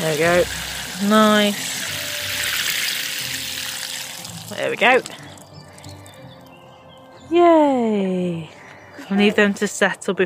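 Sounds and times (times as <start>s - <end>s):
speech: 0.0s - 1.8s, 4.5s - 5.2s, 7.3s - 10.2s
water pouring from a watering can over a seed tray of French bean seeds: 0.0s - 6.4s.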